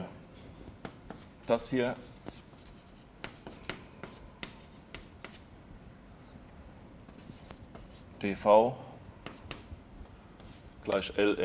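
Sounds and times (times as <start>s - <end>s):
writing mathematical notation by hand: 0.4s - 1.3s, 1.9s - 5.4s, 7.1s - 8.1s, 10.4s - 10.8s
speech: 1.5s - 2.4s, 8.2s - 8.8s, 10.9s - 11.4s.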